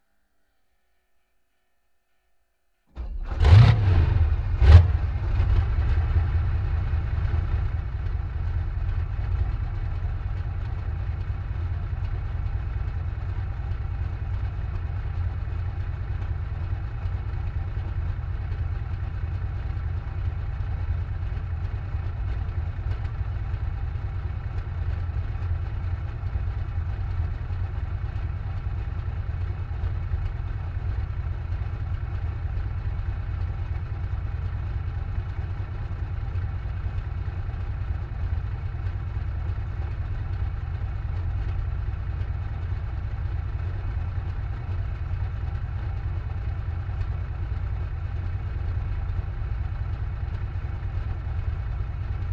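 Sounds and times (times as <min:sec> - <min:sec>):
T-44 tank engine exhaust pipe starting, idling and stopping: 0:03.0 - 0:52.3.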